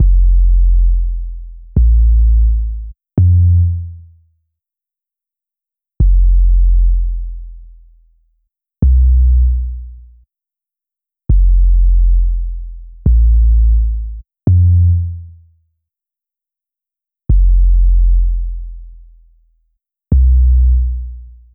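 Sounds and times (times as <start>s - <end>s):
170 BPM F minor synth sub bass: 0.0s - 3.9s, 6.0s - 7.8s, 8.8s - 10.0s, 11.3s - 15.2s, 17.3s - 19.0s, 20.2s - 21.4s.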